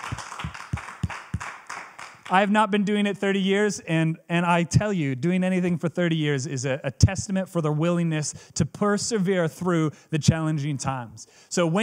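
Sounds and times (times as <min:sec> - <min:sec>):
scattered applause: 0:00.0 - 0:02.4
crowd clapping in rhythm to celebrate pastors: 0:00.0 - 0:02.5
speech: 0:02.3 - 0:11.8.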